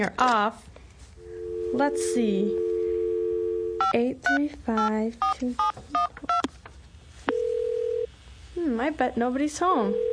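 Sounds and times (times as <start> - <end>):
speech: 0.0 - 0.7, 1.7 - 2.7, 3.9 - 5.9, 8.6 - 10.1
steady telephone dial tone: 1.2 - 4.0, 7.3 - 8.1, 9.9 - 10.1.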